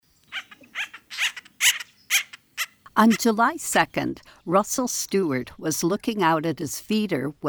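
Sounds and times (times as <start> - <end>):
acorn woodpecker harsh nasal squawking calls in Minnesota: 0.1 - 3.3
speech: 3.0 - 7.4.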